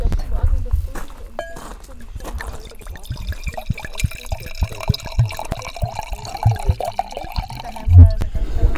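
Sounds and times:
people chatting on a terrace in front of a villa in Tuscany: 0.0 - 8.7
glasses clinking: 1.4 - 8.2
wine pouring into glasses on a terrace in Tuscany: 2.3 - 8.2.

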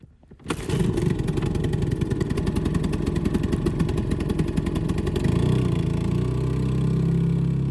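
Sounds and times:
small outboard motor on a dinghy running: 0.0 - 7.6.

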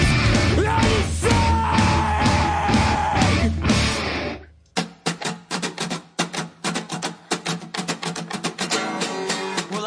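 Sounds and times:
loud distorted guitar music: 0.0 - 9.8
man screaming: 0.3 - 3.6.

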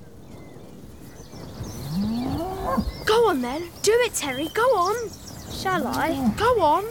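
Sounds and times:
steady noisy outdoor background: 0.0 - 6.8
cow mooing: 1.9 - 2.8
speech: 2.8 - 6.8.

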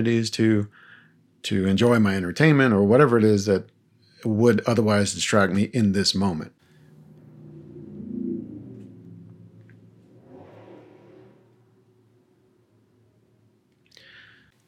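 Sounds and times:
speech: 0.0 - 0.8, 1.4 - 6.6
car with intensely loud engine driving past through a residential neighborhood: 6.6 - 13.1.

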